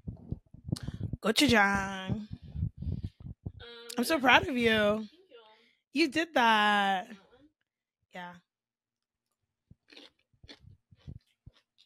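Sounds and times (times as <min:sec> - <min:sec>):
speech: 0:01.2 - 0:02.2, 0:04.0 - 0:05.1, 0:06.0 - 0:07.2, 0:08.2 - 0:08.4
person chewing kimchi: 0:09.9 - 0:11.8.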